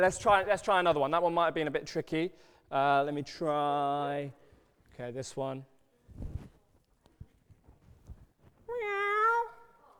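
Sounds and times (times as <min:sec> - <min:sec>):
speech: 0:00.0 - 0:04.4, 0:05.0 - 0:06.3
person imitating a cat meow for an audience to guess: 0:08.7 - 0:09.8.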